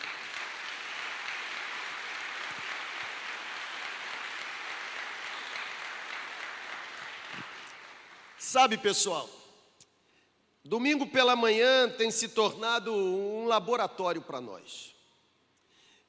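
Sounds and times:
church audience applauding after a prayer: 0.0s - 8.7s
speech: 8.4s - 9.4s, 10.7s - 15.0s.

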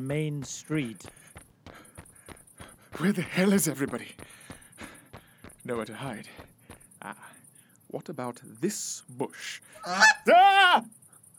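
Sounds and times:
speech: 0.0s - 1.2s, 3.0s - 4.9s, 5.6s - 11.0s
short raspy squawk: 9.7s - 10.3s
goose honking: 9.8s - 10.3s.

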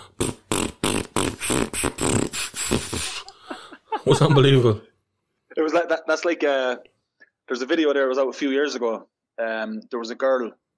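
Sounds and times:
voice imitating farts: 0.0s - 3.2s
laughter: 2.9s - 4.8s
speech: 4.1s - 4.9s, 5.7s - 6.9s, 7.5s - 10.6s.

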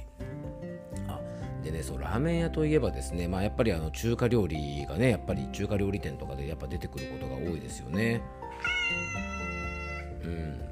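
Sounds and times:
speech: 1.7s - 9.5s, 10.3s - 10.7s
cat meowing: 8.5s - 10.2s.

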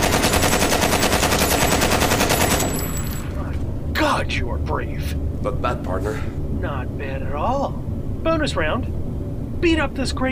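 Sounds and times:
machine gun firing: 0.0s - 3.4s
speech: 4.3s - 9.0s, 9.6s - 10.3s.

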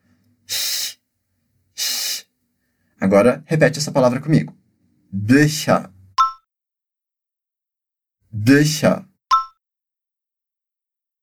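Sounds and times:
person making shh hisses in pronunciation practice: 0.4s - 1.0s, 1.7s - 2.4s
speech: 3.0s - 5.9s, 8.4s - 9.1s.

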